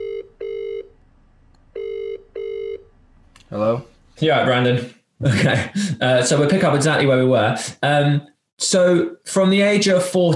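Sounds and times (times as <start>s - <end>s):
telephone ringing tone after a call is dialed: 0.0s - 0.9s, 1.7s - 2.9s
speech: 3.5s - 10.3s.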